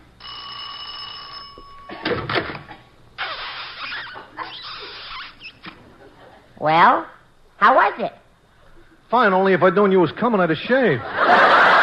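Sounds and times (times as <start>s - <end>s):
electric doorbell buzzing at a porch door: 0.2s - 2.1s
speech: 6.6s - 8.2s, 9.1s - 11.4s
laughter: 11.0s - 11.8s.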